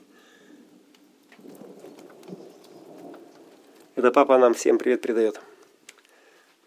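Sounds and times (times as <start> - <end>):
low rumble of thunder: 0.0 - 5.1
steady rain pouring down: 0.0 - 6.6
speech: 4.0 - 5.5.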